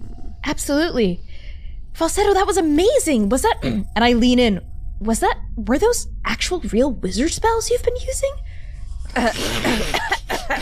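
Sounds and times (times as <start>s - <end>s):
speech: 0.5s - 1.3s, 2.0s - 8.5s, 9.2s - 10.6s
person coughing harshly: 3.6s - 3.8s, 9.2s - 10.6s.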